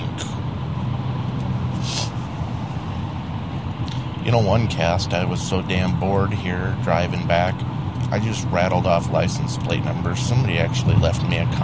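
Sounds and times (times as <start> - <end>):
truck engine drone on road: 0.0 - 11.6
air brake hiss: 1.7 - 2.3
speech: 4.3 - 11.6.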